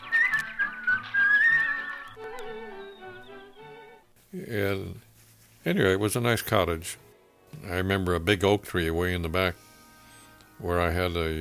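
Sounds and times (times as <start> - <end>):
person whistling a short bright melody: 0.0 - 3.9
speech: 4.4 - 7.0, 7.6 - 9.6, 10.6 - 11.3.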